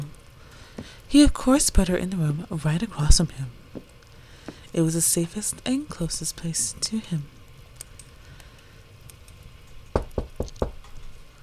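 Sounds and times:
low hum: 0.0s - 11.4s
speech: 1.1s - 3.9s, 4.8s - 7.4s
knocking on a door: 9.9s - 10.8s.

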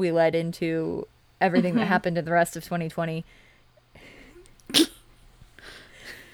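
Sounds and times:
speech: 0.0s - 4.1s
dog sneezing snort: 4.6s - 5.1s.

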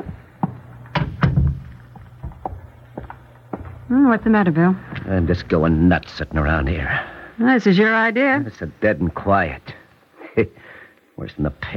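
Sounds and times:
door pushed shut with solid wooden thumps: 1.0s - 1.7s
speech: 3.9s - 9.7s, 10.4s - 11.7s.

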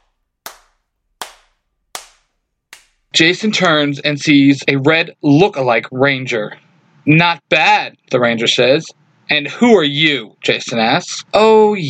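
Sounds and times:
slow clapping: 0.0s - 3.1s
speech: 3.2s - 11.8s.

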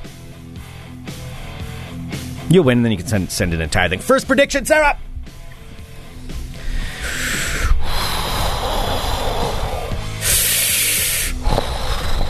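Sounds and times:
speech: 2.5s - 5.1s
heavy snorting breaths into a microphone: 5.8s - 12.2s.

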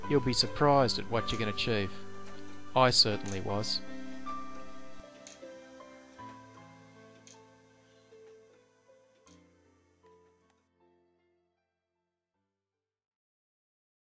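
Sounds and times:
speech: 0.1s - 2.1s, 2.8s - 3.9s
clock ticking with metallic resonance: 2.8s - 3.9s.

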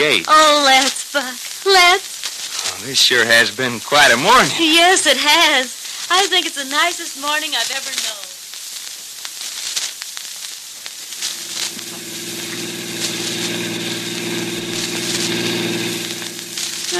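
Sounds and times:
speech: 0.0s - 8.2s
crackling noise: 0.0s - 16.9s
car engine starting and running: 11.4s - 16.9s.

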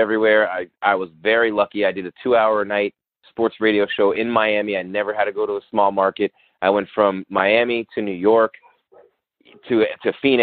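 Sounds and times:
speech: 0.0s - 8.6s, 9.5s - 10.4s
dog barking: 8.6s - 9.8s.

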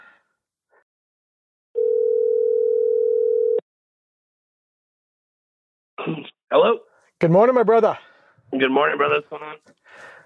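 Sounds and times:
telephone dial tone while calling someone: 1.8s - 3.6s
speech: 6.1s - 10.1s.

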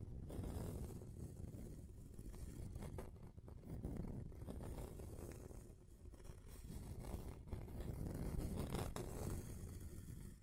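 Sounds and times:
object dragged and scratched across a table: 0.2s - 10.4s.

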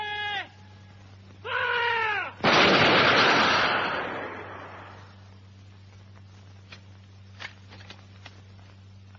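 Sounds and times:
drawn-out shouted calls: 0.0s - 2.4s
faint sharp gunshot cracks: 2.4s - 5.0s
massed rifle volley fired at charging attackers in battle: 2.4s - 5.1s.

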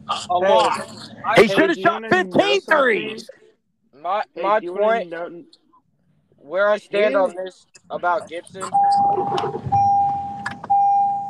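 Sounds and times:
speech: 0.2s - 3.4s, 4.0s - 5.6s, 6.4s - 9.7s
electronic car door chime tone: 8.9s - 11.2s.

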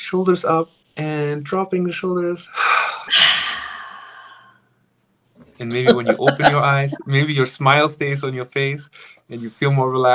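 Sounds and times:
speech: 0.1s - 3.2s, 5.6s - 10.1s
deep sigh-like breath during a stress-relief exercise: 2.5s - 4.7s
laughter: 5.6s - 7.4s.

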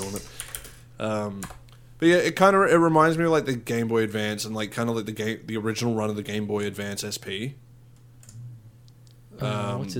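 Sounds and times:
soft computer keyboard typing: 0.0s - 0.8s
steady low electrical hum: 0.0s - 9.9s
speech: 0.1s - 0.4s, 1.0s - 7.6s, 9.4s - 9.9s.

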